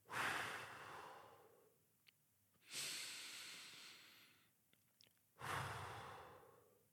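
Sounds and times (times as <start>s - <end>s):
slow deep breaths in and out: 0.0s - 1.8s, 2.6s - 4.6s, 5.4s - 6.9s.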